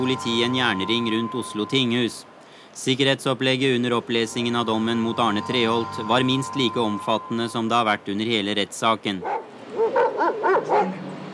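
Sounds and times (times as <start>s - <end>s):
speech: 0.0s - 9.4s
police dogs barking during a courthouse search: 9.2s - 11.0s.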